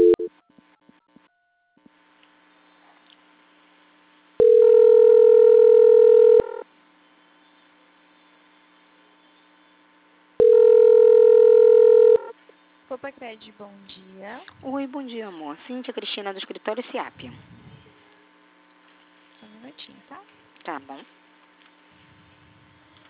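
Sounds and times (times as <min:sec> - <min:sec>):
telephone tones while a call is transferred: 0:00.0 - 0:00.5, 0:04.4 - 0:06.6, 0:10.4 - 0:12.3
low constant hum: 0:00.0 - 0:23.0
speech: 0:13.2 - 0:17.6, 0:20.7 - 0:21.2.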